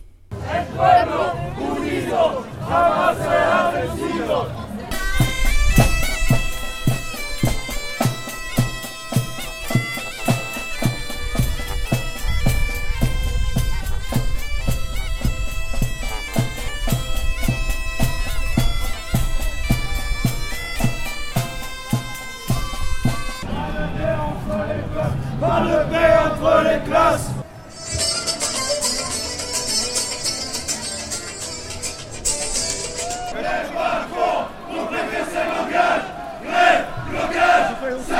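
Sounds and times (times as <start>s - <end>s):
street demonstration crowd chanting loudly in unison: 0.3s - 4.9s, 23.4s - 27.4s, 33.3s - 38.1s
looser crowd voices: 0.3s - 38.1s.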